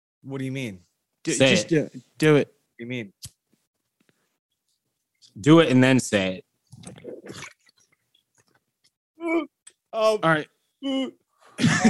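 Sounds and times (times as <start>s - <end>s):
speech: 0.2s - 3.4s, 5.3s - 7.6s, 9.2s - 11.8s
dirty bong water bubbling during a hit: 6.8s - 8.0s.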